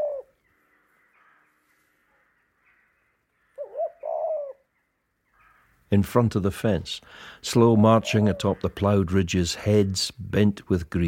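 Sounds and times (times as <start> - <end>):
crow cawing: 0.0 - 4.6, 5.3 - 5.9
doves moaning: 0.0 - 4.7, 5.3 - 11.0
speech: 5.9 - 11.0.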